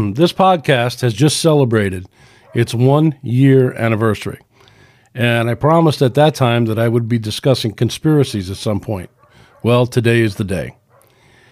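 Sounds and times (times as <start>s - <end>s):
speech: 0.0s - 4.4s, 5.2s - 10.8s
dog barking: 2.3s - 2.8s, 9.1s - 11.5s.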